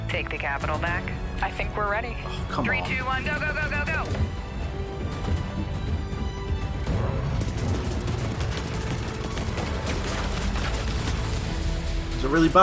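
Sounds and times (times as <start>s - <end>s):
speech: 0.1s - 4.5s, 12.2s - 12.6s
booming explosions in a video game trailer: 3.2s - 11.9s
rapid gunfire in a video game trailer: 6.8s - 11.7s.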